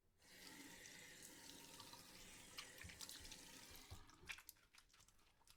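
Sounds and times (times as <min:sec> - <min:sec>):
water running over hands while washing: 0:00.2 - 0:04.5.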